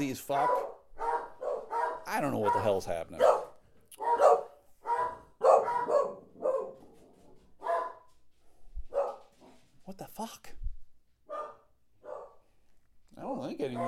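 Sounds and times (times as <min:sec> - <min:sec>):
speech: 0:00.0 - 0:00.8, 0:02.1 - 0:03.4
dogs barking frantically: 0:00.0 - 0:07.0, 0:07.6 - 0:08.1, 0:08.9 - 0:09.3, 0:11.3 - 0:12.4, 0:13.6 - 0:13.8.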